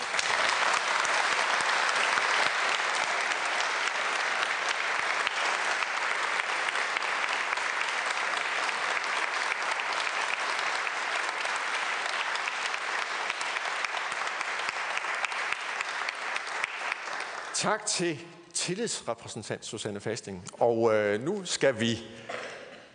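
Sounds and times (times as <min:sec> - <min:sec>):
audience applause for a union shop steward: 0:00.0 - 0:18.1
speech: 0:17.6 - 0:22.3.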